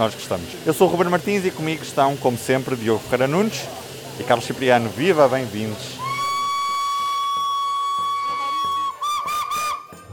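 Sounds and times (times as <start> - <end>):
speech: 0.0 - 6.0
low chugging rumble of a steam train hauling carriages: 0.0 - 10.1
historic German steam locomotive whistle in Portugal: 5.9 - 10.1.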